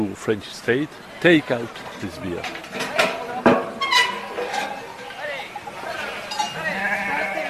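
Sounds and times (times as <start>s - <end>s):
speech: 0.0s - 2.9s
busy outdoor background of farmers and shepherds sorting animals: 0.0s - 7.4s
faint clinking bells: 5.9s - 6.8s
flock of sheep bleating at the bottom of a mountain: 6.1s - 7.4s.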